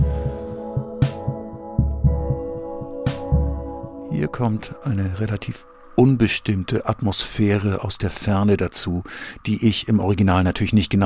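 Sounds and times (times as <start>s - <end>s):
low thudding beats: 0.0s - 5.4s
distorted keyboard chords droning with a slow throbbing pulse: 0.0s - 8.6s
speech: 4.2s - 11.0s.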